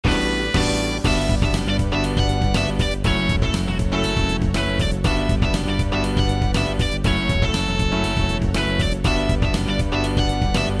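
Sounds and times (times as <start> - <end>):
midi music: 0.0 - 10.7.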